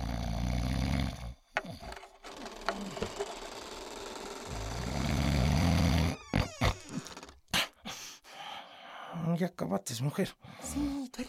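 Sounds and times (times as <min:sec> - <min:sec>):
man snoring loudly: 0:00.0 - 0:01.8, 0:03.7 - 0:07.4
speech: 0:09.4 - 0:11.2.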